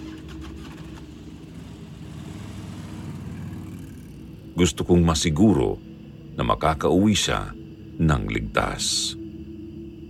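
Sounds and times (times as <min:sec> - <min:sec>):
motorcycle engine starting and idling: 0:00.8 - 0:04.6
speech: 0:04.6 - 0:09.2.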